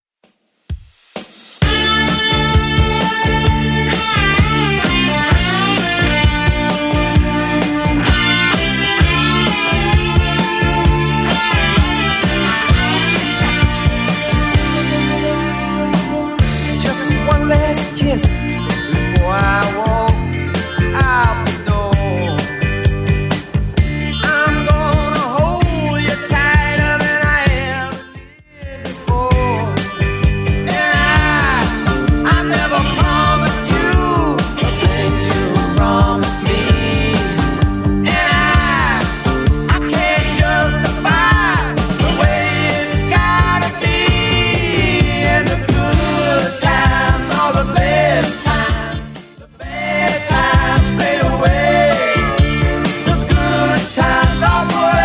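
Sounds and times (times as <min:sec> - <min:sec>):
1970s rock drum beat at 130 bpm: 0:00.6 - 0:55.0.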